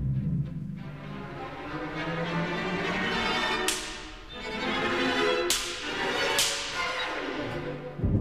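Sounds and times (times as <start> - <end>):
sustained orchestral instruments: 0.0 - 8.1
orchestral whip slapstick cracks: 3.5 - 4.3, 5.4 - 7.4.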